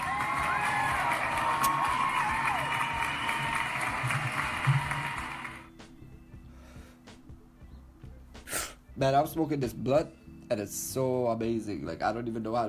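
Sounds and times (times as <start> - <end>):
scattered whoops and shouting voices: 0.0 - 5.6
crowd clapping and cheering: 0.0 - 5.7
speech: 9.0 - 12.6.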